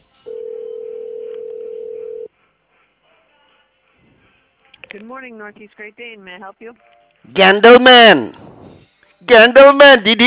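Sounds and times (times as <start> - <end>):
steady telephone tone during a call transfer: 0.3 - 2.3
speech: 4.9 - 8.4, 9.3 - 10.2.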